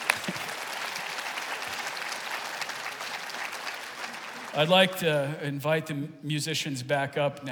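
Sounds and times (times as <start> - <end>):
room full of people applauding: 0.0 - 4.9
speech: 4.6 - 7.5.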